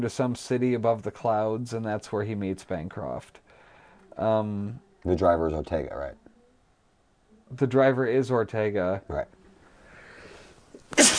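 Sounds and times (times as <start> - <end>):
speech: 0.0 - 3.4, 4.2 - 6.2, 7.5 - 9.4, 10.9 - 11.1
quiet intake of breath: 3.4 - 4.2, 9.6 - 10.8
sneeze: 10.9 - 11.1.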